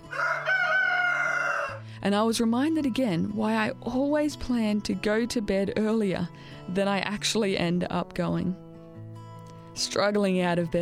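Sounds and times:
rooster crowing: 0.0 - 1.8
speech: 2.0 - 8.6, 9.8 - 10.8.

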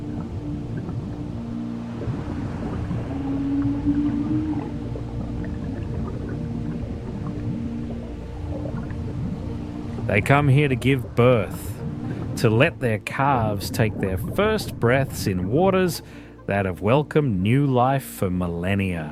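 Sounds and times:
humpback whale song underwater in the warm waters of Madagascar: 0.0 - 17.0
speech: 10.1 - 11.7, 12.4 - 19.0.

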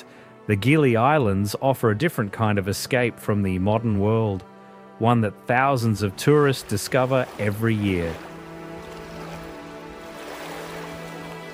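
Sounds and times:
speech: 0.5 - 8.3
water lapping against a shore of the Gili Islands off Lombok, Indonesia: 5.5 - 11.5.

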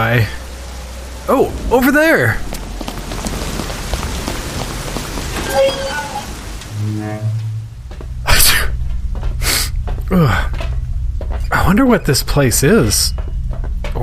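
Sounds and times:
speech: 0.0 - 0.4, 1.3 - 2.5, 5.5 - 6.0, 6.8 - 7.4, 10.1 - 10.7, 11.5 - 13.3
steady rain hissing and pattering: 0.0 - 13.1
low hum: 0.0 - 14.0
short tonal whine: 5.4 - 8.0.

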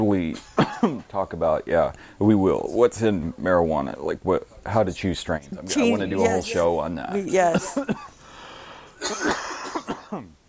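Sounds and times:
speech: 0.0 - 8.1, 9.0 - 10.4
person coughing fit: 0.4 - 1.0, 9.0 - 10.3.

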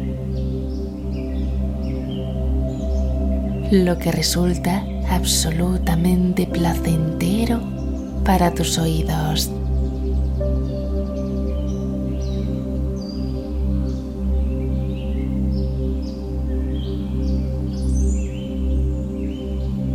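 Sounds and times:
birds chirping in a forest: 0.0 - 19.9
speech: 3.7 - 9.6.

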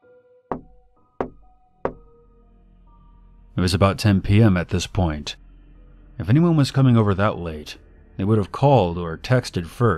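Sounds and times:
firm knocks on a door: 0.5 - 2.1
faint steady hum: 2.1 - 9.9
speech: 3.6 - 5.4, 6.2 - 9.9.

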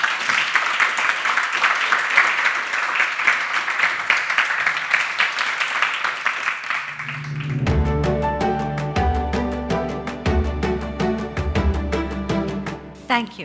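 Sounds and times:
audience applauding at an evening talk on interior design: 0.0 - 12.5
music with a rhythmic beat and sustained tones: 7.2 - 13.0.

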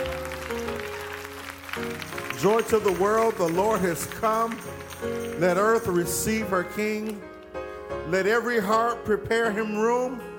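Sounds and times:
crowd clapping along: 0.0 - 7.6
speech: 1.8 - 7.3, 8.1 - 10.3.

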